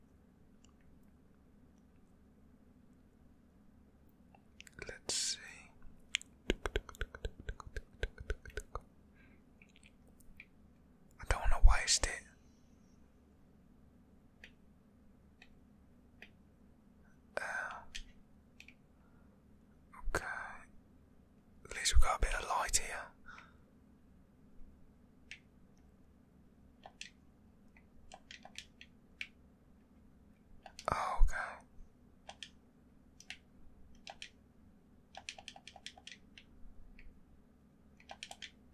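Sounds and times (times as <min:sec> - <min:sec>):
steady low hum: 0:00.0 - 0:38.7
game controller clicking: 0:06.1 - 0:08.8, 0:26.8 - 0:27.2, 0:27.8 - 0:29.4, 0:30.6 - 0:30.9, 0:32.2 - 0:32.6, 0:33.2 - 0:34.4, 0:35.1 - 0:37.1, 0:38.0 - 0:38.7.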